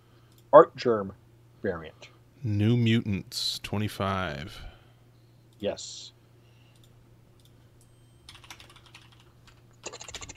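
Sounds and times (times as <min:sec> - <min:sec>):
speech: 0:00.5 - 0:04.7, 0:05.6 - 0:06.2
typing on a computer keyboard: 0:08.3 - 0:10.3.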